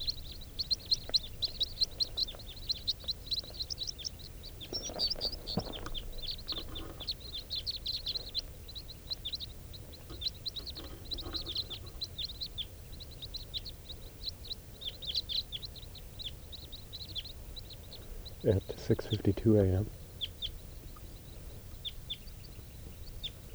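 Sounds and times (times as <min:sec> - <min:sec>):
big flock of type 4 birds calling in flight: 0:00.0 - 0:23.5
speech: 0:18.5 - 0:20.0.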